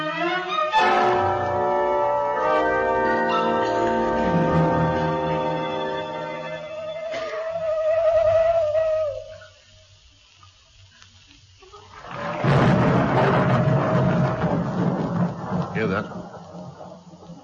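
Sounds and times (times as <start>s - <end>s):
heavy rain: 0.0s - 17.4s
thunder rumble: 0.8s - 6.4s, 11.9s - 17.4s.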